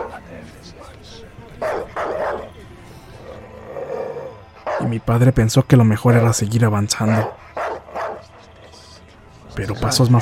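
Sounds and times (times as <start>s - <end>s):
dog barking aggressively with loud harsh barks: 0.0s - 0.2s, 1.6s - 2.5s, 4.6s - 4.9s, 7.0s - 8.4s
low drawn-out dog growling: 1.6s - 4.9s, 7.0s - 8.7s
speech: 4.8s - 7.4s, 9.6s - 10.2s.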